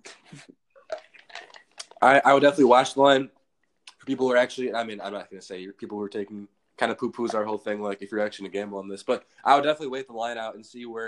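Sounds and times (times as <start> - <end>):
faint mouth clicks: 0.0 - 2.0, 3.6 - 4.1
person sipping and swallowing water: 0.1 - 2.0
speech: 2.0 - 3.4, 4.0 - 11.0.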